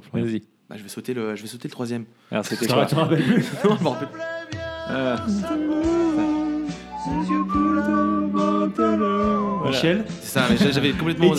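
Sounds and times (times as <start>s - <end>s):
speech: 0.0s - 11.3s
laughter: 2.4s - 4.2s, 10.4s - 11.3s
person whistling a song melody: 5.3s - 10.0s.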